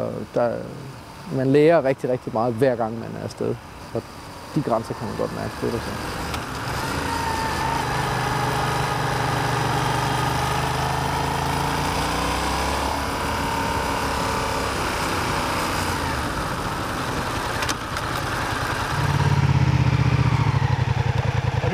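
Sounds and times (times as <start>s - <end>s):
speech: 0.0s - 6.4s
motorcycle engine running at low revs on the clutch: 4.7s - 21.7s.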